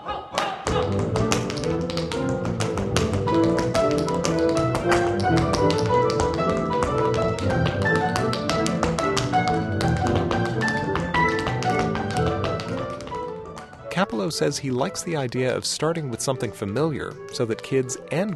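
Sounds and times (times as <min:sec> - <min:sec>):
tap dance steps from a hoofer's line: 0:00.4 - 0:14.5
orchestral music in a concerto: 0:00.7 - 0:18.3
speech: 0:14.2 - 0:18.3.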